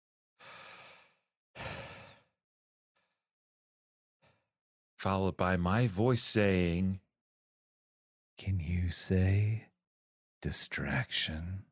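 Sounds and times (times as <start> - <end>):
heavy breathing in a voice message: 0.4 - 2.3
speech: 5.0 - 7.0, 8.4 - 9.7, 10.4 - 11.6.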